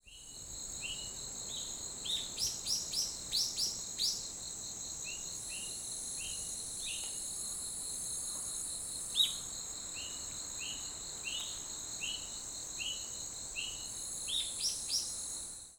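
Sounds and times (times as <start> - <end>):
Ryukyu bulbul bird song in Kunigami, Okinawa: 0.0 - 4.2, 9.1 - 15.2.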